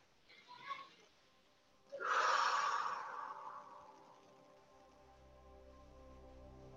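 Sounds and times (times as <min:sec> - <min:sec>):
faint steady tones: 0:00.0 - 0:06.7
deep breath in and out during a guided meditation: 0:01.9 - 0:04.6.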